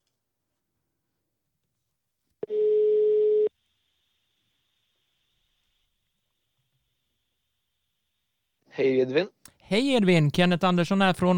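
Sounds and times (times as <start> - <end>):
telephone ringback tone while placing a call: 2.4 - 3.5
speech: 8.8 - 11.3.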